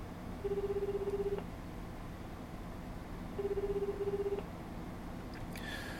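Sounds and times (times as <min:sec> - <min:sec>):
faint hum: 0:00.0 - 0:05.9
telephone ringback tone: 0:00.4 - 0:01.4, 0:03.4 - 0:04.4.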